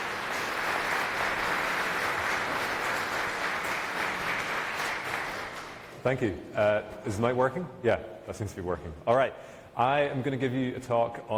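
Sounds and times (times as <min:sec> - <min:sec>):
dense applause from a sizable audience: 0:00.0 - 0:05.9
speech: 0:06.0 - 0:11.3.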